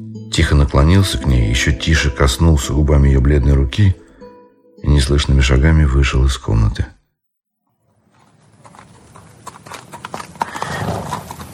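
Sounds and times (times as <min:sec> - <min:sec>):
speech: 0:00.4 - 0:04.0, 0:04.8 - 0:06.9
black horse hooves clip-clopping through a gate while ridden: 0:07.8 - 0:11.5.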